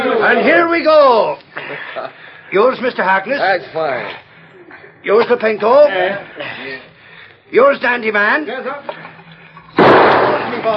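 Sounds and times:
speech: 0.2 - 4.2, 5.0 - 6.9, 7.5 - 9.1, 10.5 - 10.7
gunshot hitting a water skin: 9.8 - 10.7.

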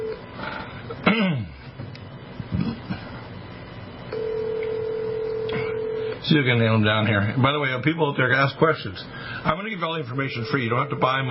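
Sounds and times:
steady telephone tone: 0.0 - 0.2, 4.1 - 6.2, 10.2 - 11.3
speech: 6.3 - 11.3.

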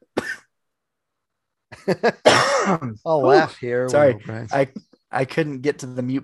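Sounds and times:
person coughing: 0.1 - 0.5, 2.2 - 3.0
speech: 1.8 - 6.2.

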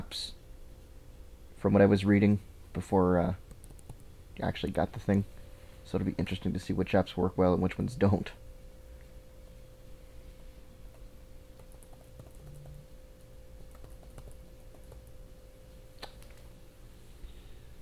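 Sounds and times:
steady electrical hum: 0.0 - 17.7
speech: 0.1 - 0.4, 1.6 - 3.4, 4.4 - 8.4
typing on a laptop keyboard: 3.5 - 4.1, 11.6 - 12.8, 13.6 - 15.1.

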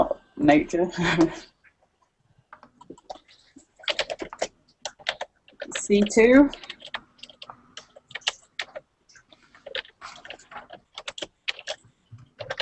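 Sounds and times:
speech: 0.4 - 1.5, 5.9 - 6.7
typing on a loud computer keyboard: 2.6 - 12.5.

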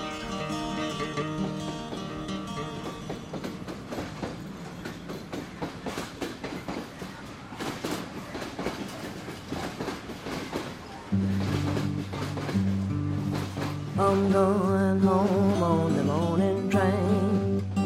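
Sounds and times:
train wheels clickety-clack over track joints: 0.2 - 17.7.

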